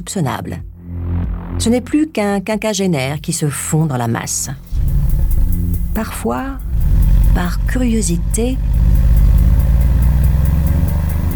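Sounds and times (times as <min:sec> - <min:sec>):
speech: 0:00.0 - 0:00.7, 0:01.6 - 0:04.8, 0:06.0 - 0:06.6, 0:07.3 - 0:08.8
car engine running while driving around a town: 0:03.2 - 0:11.3
faint regular ticking: 0:03.2 - 0:11.3.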